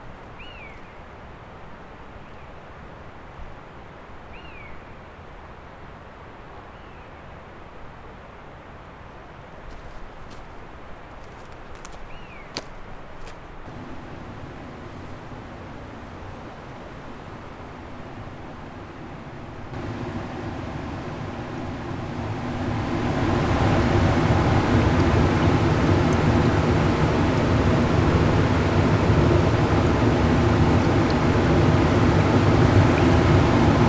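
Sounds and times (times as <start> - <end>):
steady engine-like hum: 13.6 - 33.8
quiet low rumble at a bridge over a river: 13.7 - 33.8.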